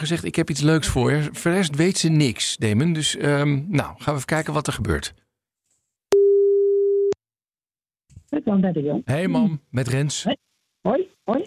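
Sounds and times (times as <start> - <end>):
speech: 0.0 - 5.2, 8.3 - 11.4
steady ringback tone of a phone call: 6.2 - 7.2.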